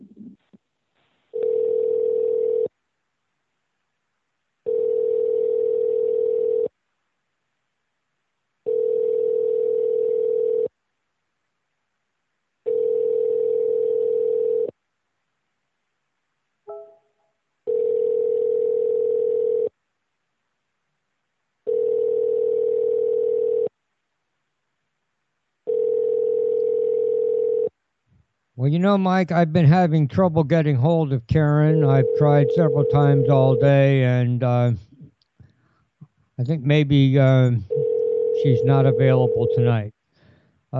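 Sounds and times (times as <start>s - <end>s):
telephone ringing tone while placing a call: 1.4s - 2.7s, 4.7s - 6.7s, 8.7s - 10.7s, 12.7s - 14.7s, 17.7s - 19.7s, 21.7s - 23.7s, 25.7s - 27.7s, 31.8s - 34.0s, 37.7s - 39.8s
speech: 28.8s - 34.9s, 36.4s - 37.8s, 38.4s - 40.0s.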